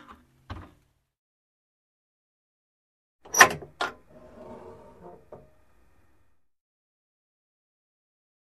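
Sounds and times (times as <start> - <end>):
safe opening and closing: 3.3 - 6.3.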